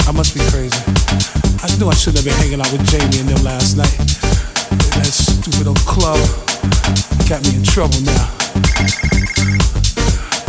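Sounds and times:
speech: 0.1s - 10.4s
phone ringing in a rhythmic electronic pattern: 8.7s - 9.6s.

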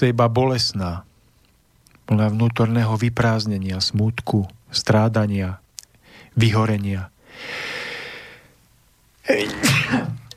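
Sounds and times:
speech: 0.0s - 1.1s, 2.1s - 5.6s, 6.4s - 7.8s, 9.3s - 10.2s
long breathy intake of air: 7.2s - 8.6s
person sneezing: 9.3s - 10.3s.

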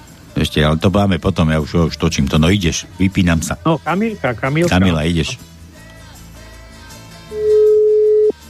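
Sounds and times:
speech: 0.4s - 5.5s
telephone ringing tone on a call: 7.3s - 8.4s.

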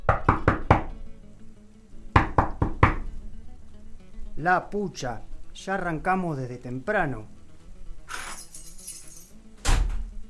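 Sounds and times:
knocking on a wooden door: 0.0s - 0.9s, 2.2s - 3.1s
speech: 4.4s - 7.4s.

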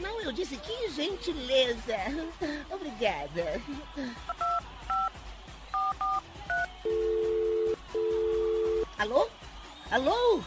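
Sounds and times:
speech: 0.2s - 4.5s, 9.0s - 10.4s
mobile phone two-tone keypad beeps while dialing: 5.8s - 8.9s.

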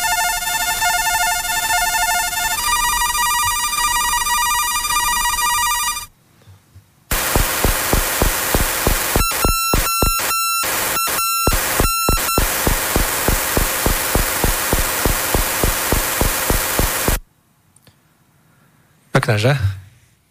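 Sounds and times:
VOR radio navigation beacon buzzing electronic tones: 0.0s - 6.1s, 7.1s - 17.2s
VOR radio navigation beacon rapid rhythmic pulses: 7.1s - 17.2s
speech: 19.3s - 19.8s.

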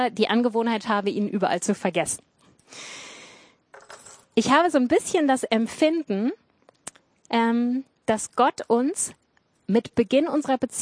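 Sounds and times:
speech: 0.0s - 3.0s, 4.4s - 6.4s, 7.3s - 10.7s
bunch of keys jingling and clinking: 3.8s - 4.3s.

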